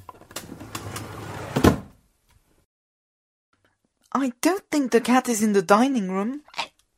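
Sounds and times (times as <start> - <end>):
drawer of felt-tip markers sliding open: 0.1 - 2.0
drawer knocking as it stops: 0.5 - 2.0
speech: 4.2 - 6.6.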